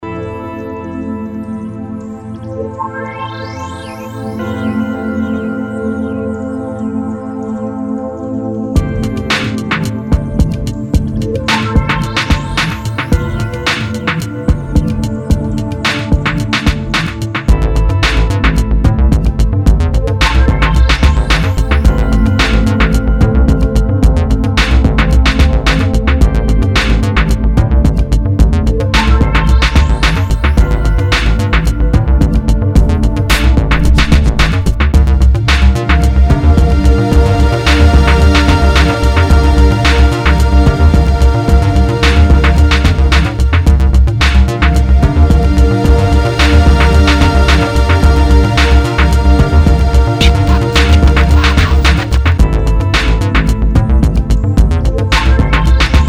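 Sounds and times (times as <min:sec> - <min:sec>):
pad synth electronica: 0:00.0 - 0:56.0.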